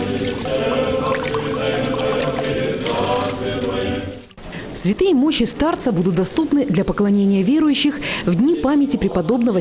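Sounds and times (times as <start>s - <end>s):
water poured repeatedly over a stone: 0.1s - 3.3s
speech: 4.8s - 9.5s.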